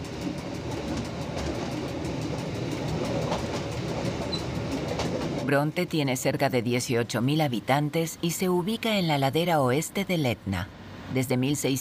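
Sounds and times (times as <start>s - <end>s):
train arriving at a station in a small town on the western slope of Mount Etna: 0.0s - 6.2s
speech: 5.5s - 11.7s.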